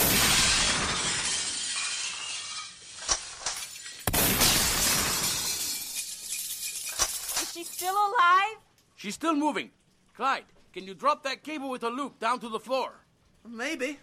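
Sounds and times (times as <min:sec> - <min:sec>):
falling debris crashing: 0:00.0 - 0:07.8
storefront glass shattering from gunshots: 0:00.0 - 0:08.2
gunshot cracks: 0:04.1 - 0:05.2
speech: 0:07.7 - 0:14.0.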